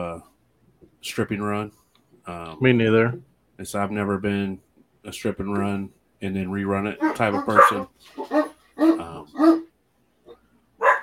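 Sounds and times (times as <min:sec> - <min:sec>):
speech: 0:01.0 - 0:08.4
dogs barking: 0:07.0 - 0:09.7, 0:10.8 - 0:11.0.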